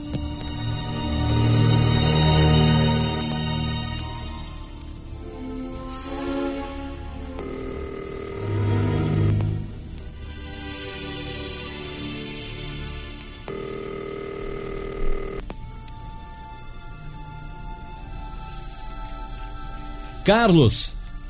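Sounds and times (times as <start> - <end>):
constant low hiss: 0.0 - 21.2
steady electronic telephone tone while dialing: 7.3 - 9.6, 13.5 - 15.4
speech: 20.3 - 21.0.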